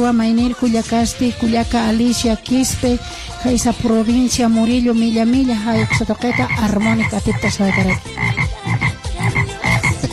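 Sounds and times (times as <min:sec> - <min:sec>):
speech: 0:00.0 - 0:08.5
frog or toad croaking: 0:05.7 - 0:10.1.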